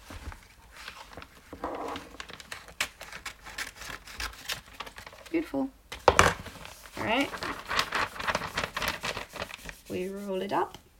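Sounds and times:
paper tearing and crinkling: 0.8s - 5.4s, 6.3s - 10.2s
speech: 5.4s - 5.8s, 7.0s - 7.6s, 9.9s - 10.8s.

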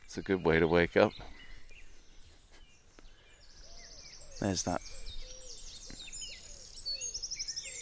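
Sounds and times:
faint bird calls: 0.0s - 7.7s
wren singing rapid repeated notes: 0.0s - 7.7s
speech: 0.1s - 1.4s, 4.4s - 5.1s.

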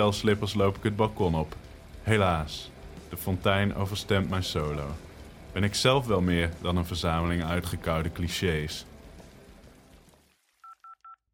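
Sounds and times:
speech: 0.0s - 8.9s
steady telephone tone: 10.6s - 11.3s.

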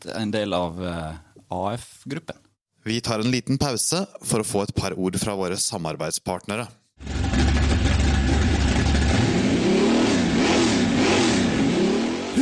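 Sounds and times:
speech: 0.0s - 7.6s
1957 Chevy V8 engine idling and revving: 7.0s - 12.4s.

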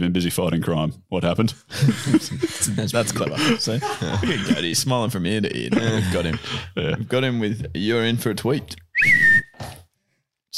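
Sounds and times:
speech: 0.0s - 9.4s
breathy rush: 1.6s - 4.7s, 5.8s - 6.8s
laughter: 1.7s - 7.2s
short steady high whistle tone: 8.9s - 9.6s.

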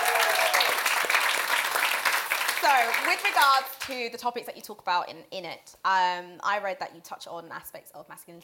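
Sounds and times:
small group clapping: 0.0s - 4.0s
speech: 2.6s - 8.4s.

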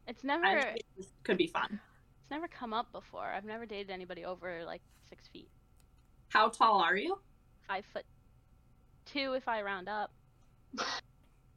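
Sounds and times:
speech: 0.2s - 5.6s, 6.3s - 8.1s, 9.1s - 11.0s
sneeze: 10.8s - 11.0s.

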